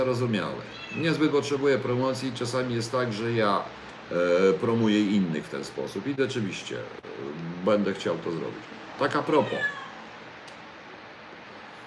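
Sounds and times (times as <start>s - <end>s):
speech: 0.0s - 9.8s
cat meowing: 0.6s - 1.4s, 9.2s - 10.1s.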